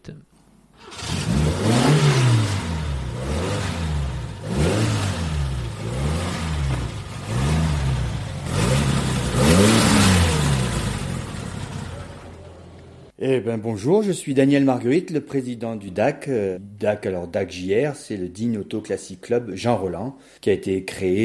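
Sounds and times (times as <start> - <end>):
speech: 0.0 - 1.7, 13.2 - 21.2
Alpine Renault berlinette sports car engine revving: 0.9 - 13.1.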